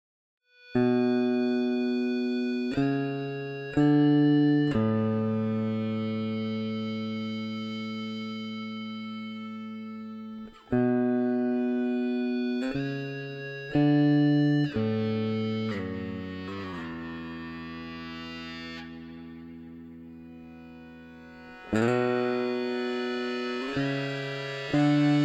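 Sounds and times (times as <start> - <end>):
eBow melody on bass in single notes: 0.8 - 25.2.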